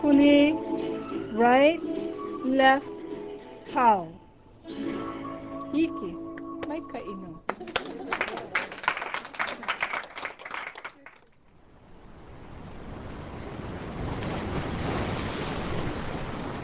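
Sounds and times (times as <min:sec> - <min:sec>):
speech: 0:00.0 - 0:00.7, 0:01.4 - 0:03.0, 0:03.7 - 0:08.5
laughter: 0:07.5 - 0:10.3
Pacific Ocean waves crashing on beach: 0:11.7 - 0:16.6.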